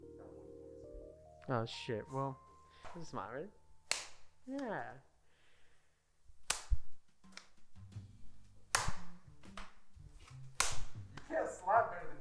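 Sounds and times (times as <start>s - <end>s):
speech: 1.5s - 3.6s, 4.5s - 5.1s, 11.3s - 12.1s
sharp loud hand slaps: 3.8s - 4.8s, 6.4s - 7.7s, 8.6s - 11.4s.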